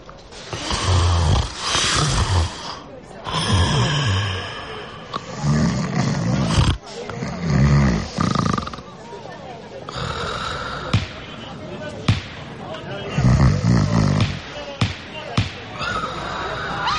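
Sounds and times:
loud rumbling snoring: 0:00.5 - 0:08.9, 0:09.9 - 0:11.0, 0:13.1 - 0:14.4, 0:15.8 - 0:16.8.

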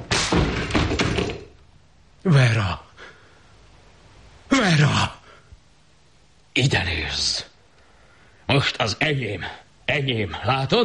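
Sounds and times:
door being forced and banged: 0:00.2 - 0:01.5
speech: 0:02.2 - 0:02.8, 0:06.6 - 0:07.4, 0:08.6 - 0:10.8.

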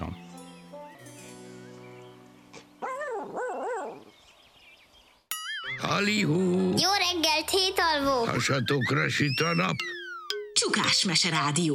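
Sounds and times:
dog barking with wavering yelping calls: 0:02.8 - 0:04.1
speech: 0:05.8 - 0:10.0, 0:10.6 - 0:11.7.

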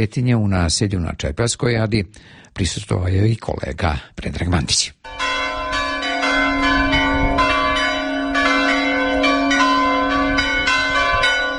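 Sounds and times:
speech: 0:00.0 - 0:05.3
Serbian Orthodox church bell ringing to call worshippers to a feast: 0:05.0 - 0:11.5.

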